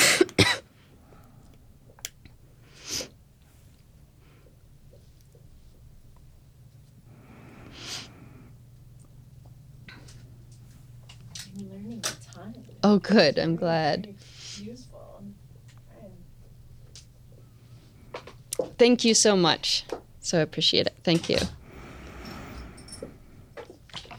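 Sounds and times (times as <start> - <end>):
person coughing with a tickle in the throat: 0.0 - 0.7
low hum: 0.0 - 24.1
speech: 12.9 - 14.8, 18.8 - 21.6.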